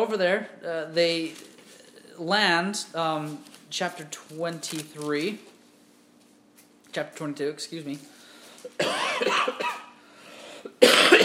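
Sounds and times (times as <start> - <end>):
speech: 0.0 - 1.5, 2.2 - 5.5, 6.9 - 9.8
man coughing: 8.7 - 10.0, 10.7 - 11.2.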